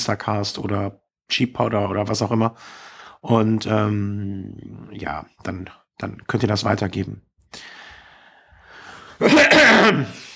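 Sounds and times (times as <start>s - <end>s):
speech: 0.0s - 7.8s, 9.2s - 10.3s
person coughing: 9.2s - 10.2s.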